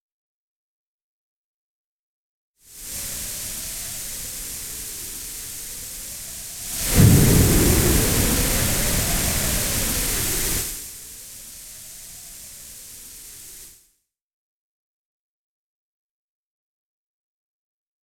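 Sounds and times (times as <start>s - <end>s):
mad wind with phaser effect: 2.8s - 13.6s.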